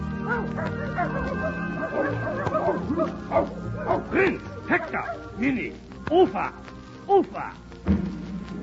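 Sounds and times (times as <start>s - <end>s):
several dogs barking and yipping: 0.2s - 5.4s
short high-pitched dog yelps: 0.3s - 4.1s
speech: 0.6s - 8.2s.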